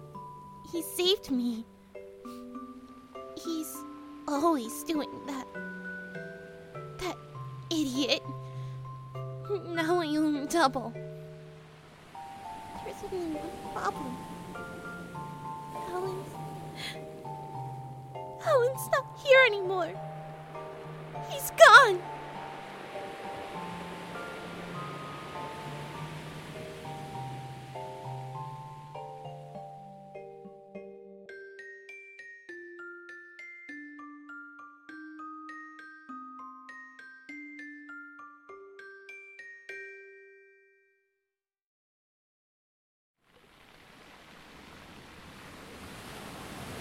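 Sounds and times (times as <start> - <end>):
speech: 0.7 - 1.7, 3.4 - 5.7, 7.8 - 8.5, 9.5 - 11.1, 13.0 - 14.3, 18.4 - 20.0, 21.3 - 22.1
slow chiming melody: 1.6 - 41.2
ocean waves washing on a shore: 11.1 - 29.4, 43.3 - 46.7.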